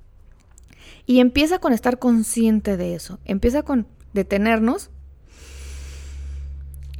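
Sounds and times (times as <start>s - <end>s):
faint low hum: 0.0s - 6.9s
deep inhale through the nose in a breathing exercise: 0.7s - 1.1s, 5.2s - 6.8s
speech: 0.9s - 5.5s.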